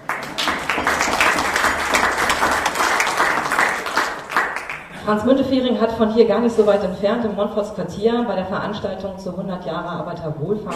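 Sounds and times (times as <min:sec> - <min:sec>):
audience applause: 0:00.0 - 0:04.9
speech: 0:05.1 - 0:10.7.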